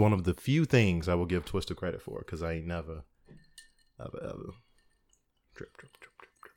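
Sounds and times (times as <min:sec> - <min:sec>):
speech: 0:00.0 - 0:03.1, 0:04.0 - 0:04.6, 0:05.6 - 0:06.1
liquid dripping: 0:03.1 - 0:06.5.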